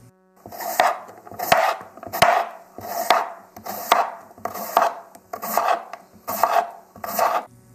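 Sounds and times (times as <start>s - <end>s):
knife chopping carrots into large pieces on a cutting board: 0.4s - 7.5s.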